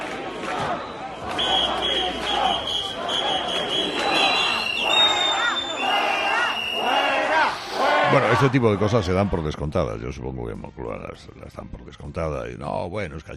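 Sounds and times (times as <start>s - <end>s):
large crowd shouting and booing at the Royal Palace in Madrid: 0.0s - 11.2s
piercing whistles from crowd: 0.8s - 7.8s
speech: 8.3s - 13.3s.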